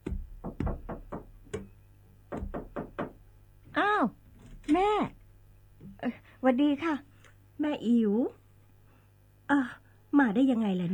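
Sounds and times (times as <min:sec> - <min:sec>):
firm knocking on a door: 0:00.0 - 0:01.7, 0:02.3 - 0:03.3
speech: 0:04.0 - 0:05.1, 0:06.4 - 0:08.4, 0:09.5 - 0:10.9.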